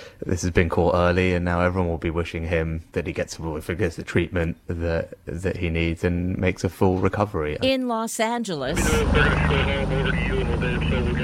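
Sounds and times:
speech: 0.2s - 11.2s
helicopter hovering during a river rescue: 8.7s - 11.2s.

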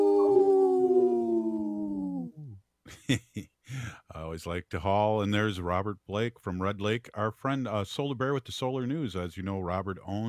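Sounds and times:
person imitating a wolf howl: 0.0s - 2.6s
speech: 2.9s - 10.2s.

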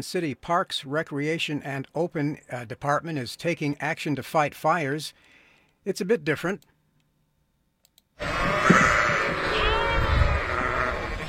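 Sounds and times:
speech: 0.0s - 6.7s
flock of sheep bleating while grazing on grass in Carson City Nevada: 8.2s - 11.2s.

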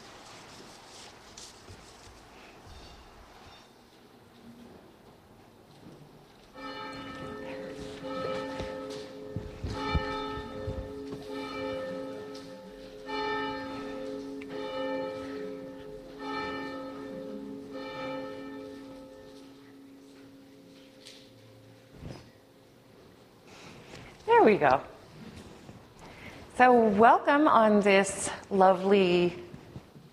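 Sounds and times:
church bell chimes ringing: 6.5s - 23.7s
speech: 24.4s - 24.9s, 26.6s - 29.4s.

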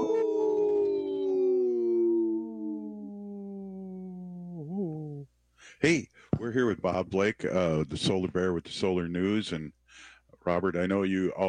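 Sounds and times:
wolf howling: 0.0s - 5.3s
speech: 5.7s - 11.4s.

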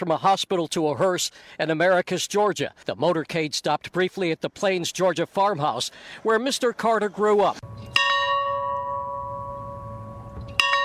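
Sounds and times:
speech: 0.0s - 8.0s
church bell tolling outdoors at a farmhouse in Plains Georgia: 7.7s - 10.8s.

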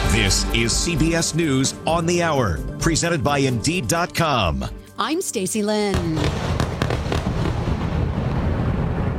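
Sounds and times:
speech: 0.2s - 6.6s
explosions from airstrikes at night: 5.9s - 9.1s.

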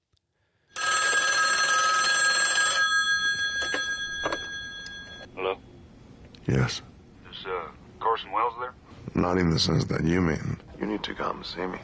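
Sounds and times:
telephone bell ringing in a film scene: 0.8s - 5.3s
speech: 6.5s - 6.9s, 8.3s - 11.8s.

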